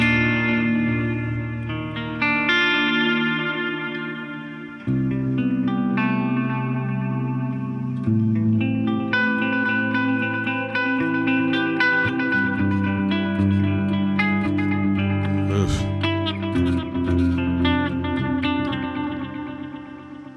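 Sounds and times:
sustained electric guitar chords through overdrive, delay and reverb pedals: 0:00.0 - 0:20.3.

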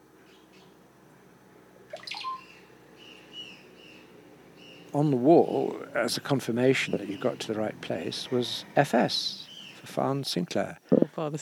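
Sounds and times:
steady hiss of damp forest ambience: 0:00.0 - 0:11.4
golden-tailed birds chirping and whistling in a cloud forest: 0:01.9 - 0:04.8, 0:09.2 - 0:09.8
speech: 0:04.9 - 0:11.4.

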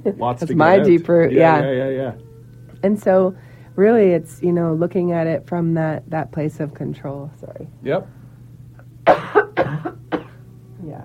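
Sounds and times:
speech: 0:00.0 - 0:08.2
person clearing throat: 0:09.0 - 0:10.4
person coughing: 0:09.0 - 0:10.4.

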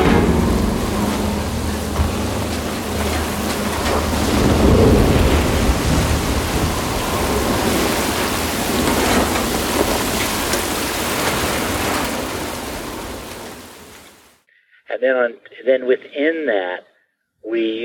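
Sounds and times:
low rumble of thunder: 0:00.0 - 0:14.1
heavy rain in a thunderstorm: 0:00.0 - 0:14.4
hiss of wind-driven water: 0:00.0 - 0:14.4
speech: 0:15.1 - 0:17.8.

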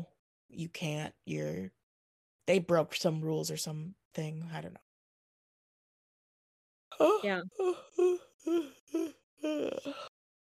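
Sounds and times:
speech: 0:00.5 - 0:01.8, 0:02.4 - 0:04.8, 0:06.9 - 0:10.1
person yawning aloud: 0:07.0 - 0:10.1.

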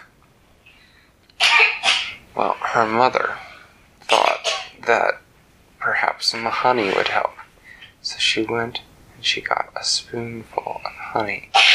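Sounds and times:
girl coughing with a sharp harsh cough: 0:01.4 - 0:02.2, 0:04.1 - 0:04.8, 0:11.5 - 0:11.7
speech: 0:02.4 - 0:03.4, 0:04.9 - 0:05.2, 0:05.9 - 0:07.4, 0:08.0 - 0:11.6.

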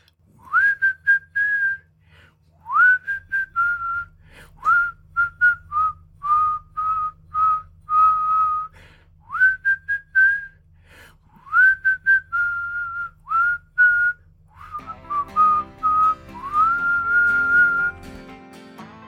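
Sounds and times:
man whistling a cheerful melody while strolling: 0:00.4 - 0:01.9, 0:02.6 - 0:10.6, 0:11.4 - 0:18.4
soft instrumental backing music: 0:14.8 - 0:19.0.

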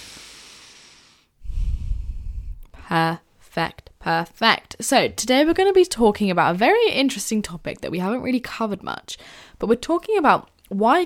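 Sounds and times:
deep breath: 0:00.0 - 0:02.8, 0:09.2 - 0:09.6
speech: 0:02.9 - 0:11.0.

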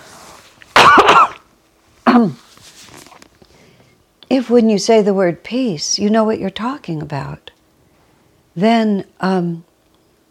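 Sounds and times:
person coughing to clear throat tickle: 0:00.8 - 0:01.4, 0:02.0 - 0:02.4
speech: 0:02.2 - 0:02.5, 0:04.4 - 0:07.5, 0:08.6 - 0:09.7.

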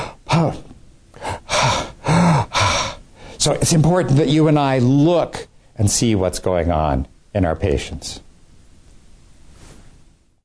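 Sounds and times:
voice imitating labored heavy breathing of a patient with advanced cancer: 0:00.0 - 0:03.4
speech: 0:00.4 - 0:00.7, 0:03.4 - 0:08.2.

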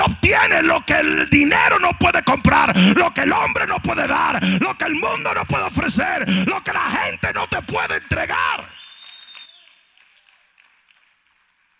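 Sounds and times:
speech: 0:00.4 - 0:08.7
crowd applauding in a large room: 0:08.7 - 0:11.7.

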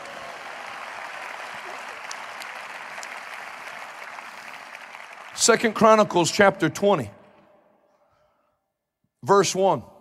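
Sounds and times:
church audience clapping: 0:00.0 - 0:06.5
speech: 0:05.4 - 0:07.2, 0:09.3 - 0:09.9.

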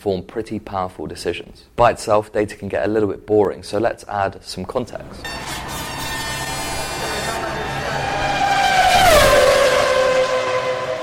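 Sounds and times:
speech: 0:00.0 - 0:05.7
Formula One race car screaming past with high-pitched engine whine: 0:04.8 - 0:11.0.

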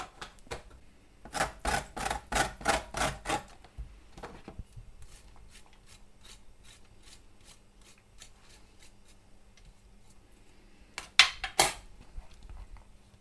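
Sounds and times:
lemon peel rasped against a grater: 0:01.3 - 0:03.5, 0:05.0 - 0:09.3.

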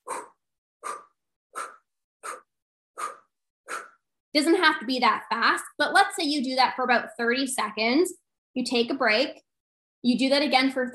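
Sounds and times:
quick forceful exhales through the mouth in a breathing exercise: 0:00.0 - 0:04.0
speech: 0:04.4 - 0:10.9.

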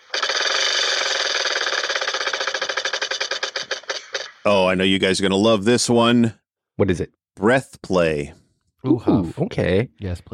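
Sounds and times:
spinning prize wheel clicking in a game: 0:00.0 - 0:04.5
speech: 0:04.4 - 0:10.3.

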